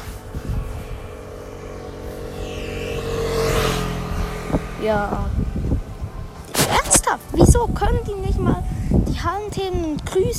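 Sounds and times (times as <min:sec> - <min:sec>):
motorcycle passing by: 0:00.0 - 0:09.6
steady outdoor rumble: 0:00.0 - 0:10.3
speech: 0:04.8 - 0:05.4, 0:07.4 - 0:10.3.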